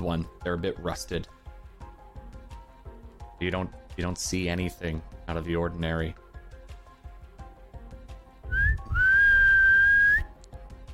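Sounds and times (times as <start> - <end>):
speech: 0.0 - 1.4, 3.4 - 6.2
person whistling: 8.5 - 10.3.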